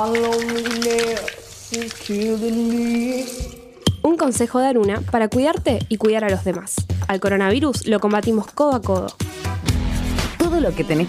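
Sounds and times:
person humming a melody: 0:00.0 - 0:03.8
tap water running while washing hands: 0:00.0 - 0:03.9
speech: 0:00.0 - 0:09.5, 0:10.5 - 0:11.0.

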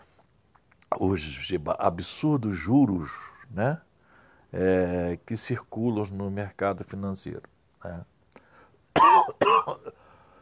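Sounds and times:
speech: 0:01.0 - 0:03.9, 0:04.5 - 0:08.1
person coughing from the throat with a throaty rasp: 0:09.0 - 0:10.0.

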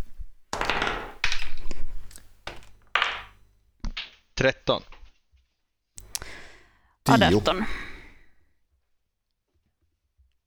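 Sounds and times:
twenty-sided dice rolled on a table: 0:00.5 - 0:04.3
speech: 0:04.4 - 0:04.9, 0:07.1 - 0:07.8.

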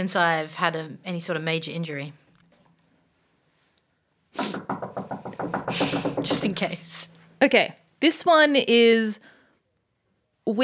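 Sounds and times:
speech: 0:00.0 - 0:02.2, 0:04.4 - 0:04.8, 0:05.7 - 0:09.3, 0:10.5 - 0:10.6
knocking on wood: 0:04.4 - 0:06.8.

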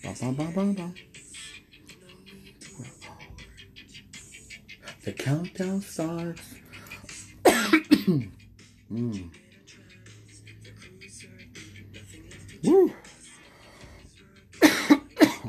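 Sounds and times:
speech: 0:00.0 - 0:01.2, 0:05.0 - 0:06.6, 0:08.1 - 0:09.4
person coughing: 0:07.4 - 0:08.4, 0:14.6 - 0:15.4
voiced exclamation: 0:12.6 - 0:13.0.

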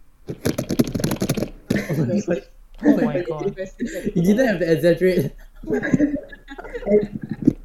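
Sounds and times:
loud typing on a computer keyboard: 0:00.3 - 0:01.9
laughter: 0:01.7 - 0:07.6
speech: 0:02.0 - 0:07.3.

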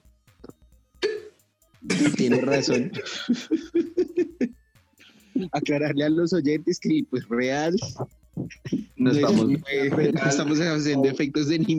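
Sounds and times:
person hiccuping: 0:01.0 - 0:01.3
laughter: 0:01.9 - 0:04.6, 0:06.5 - 0:11.7
speech: 0:02.2 - 0:04.3, 0:05.4 - 0:08.2, 0:09.0 - 0:11.7.

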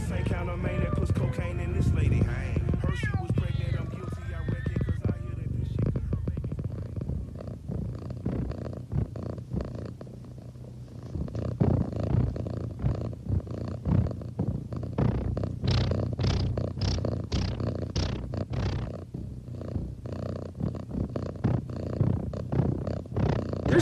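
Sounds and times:
cat purring: 0:00.0 - 0:23.8.

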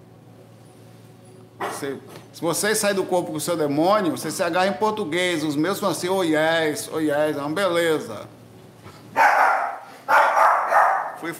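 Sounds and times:
speech: 0:01.8 - 0:08.4
dog barking toward a wall: 0:09.2 - 0:11.2.

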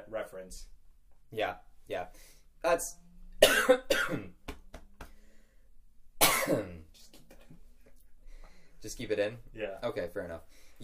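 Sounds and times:
speech: 0:00.2 - 0:04.4, 0:06.4 - 0:06.8, 0:08.8 - 0:10.8
harsh coughs: 0:03.4 - 0:04.4, 0:06.2 - 0:06.8.

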